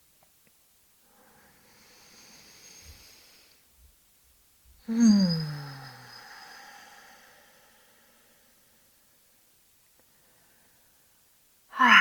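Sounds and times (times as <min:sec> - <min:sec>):
deep slow breathing during a guided breathing exercise: 0:01.1 - 0:03.6, 0:04.9 - 0:09.0.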